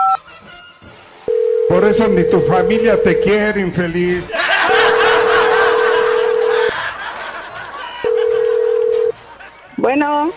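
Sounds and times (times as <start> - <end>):
telephone dial and touch tones as a call is placed: 1.3 - 3.4, 5.6 - 6.7, 8.2 - 9.1
speech: 1.7 - 4.4, 9.9 - 10.3
laughter: 4.3 - 9.8.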